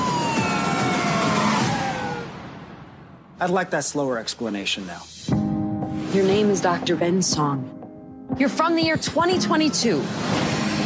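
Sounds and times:
speeding cars roaring past: 0.0s - 2.6s
police car sirens wailing in a chase: 0.0s - 2.8s
speech: 3.4s - 5.2s, 6.1s - 7.8s, 8.4s - 10.6s.

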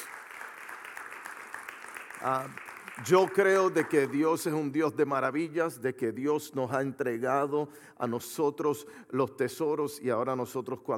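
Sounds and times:
audience applause at a religious gathering: 0.0s - 4.3s
speech: 2.2s - 10.9s.

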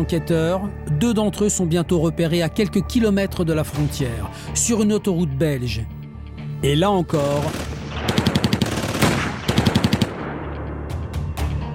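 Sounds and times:
speech: 0.0s - 6.0s, 6.6s - 7.7s
rapid automatic gunfire in a shootout: 7.2s - 10.6s
single heavier blast in a shootout: 7.5s - 10.9s.

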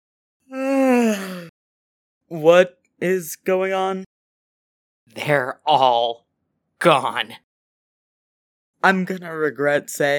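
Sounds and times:
person yawning: 0.5s - 1.5s
speech: 2.3s - 4.1s, 5.1s - 6.2s, 6.8s - 7.4s, 8.8s - 10.1s.

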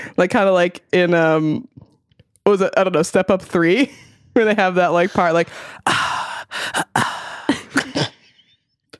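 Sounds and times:
speech: 0.1s - 1.8s, 2.4s - 7.1s
voice making a beat out of breathy inhales and exhales: 5.5s - 7.9s.

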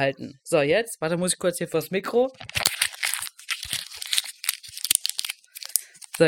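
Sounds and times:
speech: 0.0s - 2.6s
10-euro banknote being crumpled into a ball: 2.4s - 6.2s.

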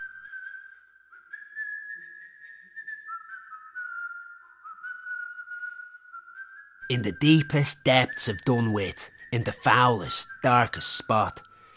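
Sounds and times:
person whistling a wandering tune: 0.0s - 11.7s
speech: 6.9s - 11.5s.

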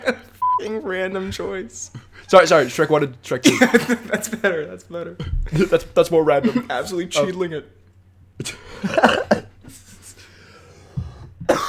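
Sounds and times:
speech: 0.1s - 7.8s, 8.4s - 9.2s
person coughing: 8.4s - 9.6s, 11.4s - 11.6s.

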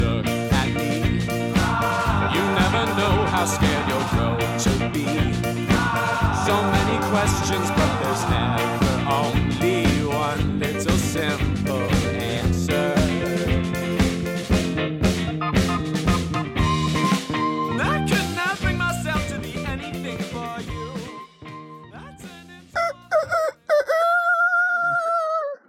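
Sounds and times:
busy rhythmic music-like sound with dense harmonic layers: 0.2s - 23.1s
rooster crowing: 1.6s - 4.5s, 5.7s - 9.0s, 22.8s - 25.6s
laughter: 1.6s - 10.2s.

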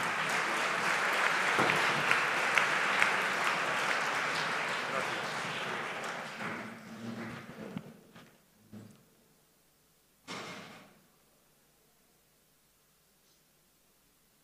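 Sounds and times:
audience clapping: 0.0s - 7.5s.

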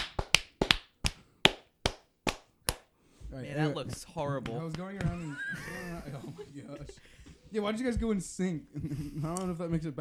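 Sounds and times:
hands clapping: 0.0s - 3.0s, 3.6s - 6.3s
speech: 3.3s - 10.0s
laughter: 3.7s - 10.0s.

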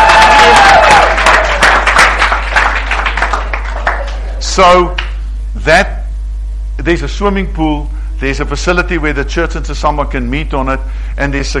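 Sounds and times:
scattered cheers: 0.0s - 2.0s
audience clapping: 0.0s - 5.2s
speech: 4.6s - 5.0s, 5.6s - 6.0s, 6.8s - 11.5s.

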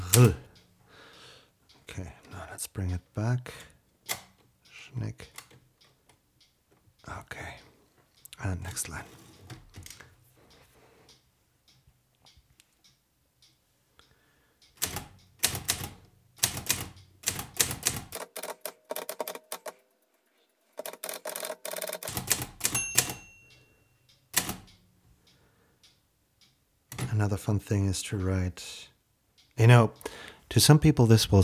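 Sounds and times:
speech: 0.2s - 0.4s, 2.0s - 3.7s, 4.9s - 5.4s, 8.4s - 9.2s, 27.2s - 28.9s, 29.6s - 31.4s
manual typewriter keys clacking: 14.8s - 19.8s, 20.8s - 23.3s.

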